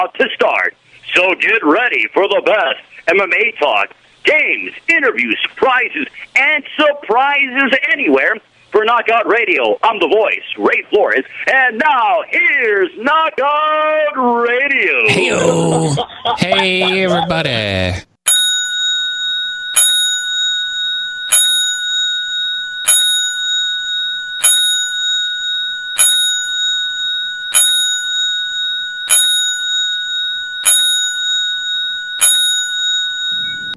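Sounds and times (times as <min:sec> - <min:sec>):
speech: 0:00.0 - 0:18.1
laughter: 0:15.0 - 0:18.0
bright ringing bell struck: 0:18.3 - 0:33.7.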